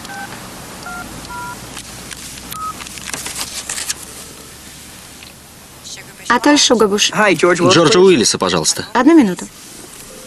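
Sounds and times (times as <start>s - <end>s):
faint crackling telephone line hiss: 0.0s - 10.2s
touch-tone beeps from a car telephone being dialed: 0.1s - 1.6s, 2.5s - 2.8s
speech: 6.3s - 9.7s.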